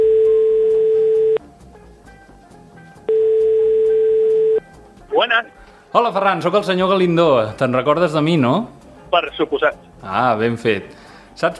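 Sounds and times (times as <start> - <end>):
telephone line tone while a call is placed: 0.0 - 1.4, 3.1 - 4.6
speech: 5.4 - 11.5.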